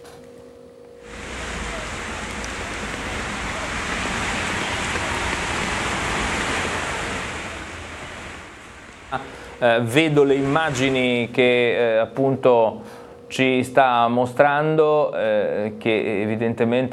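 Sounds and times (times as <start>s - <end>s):
heavy rain in Liguria Italy: 1.0s - 11.6s
water pouring and churning into drains in Liguria Italy: 1.1s - 11.3s
speech: 9.1s - 16.9s.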